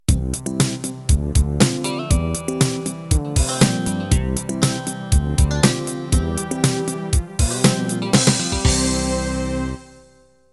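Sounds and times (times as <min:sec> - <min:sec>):
hip hop soul music: 0:00.2 - 0:09.6.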